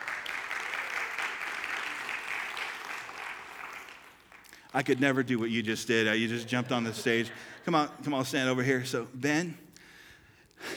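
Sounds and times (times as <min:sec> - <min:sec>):
audience applause: 0:00.0 - 0:07.9
laughter: 0:04.7 - 0:09.4, 0:10.6 - 0:10.7
speech: 0:04.7 - 0:09.6.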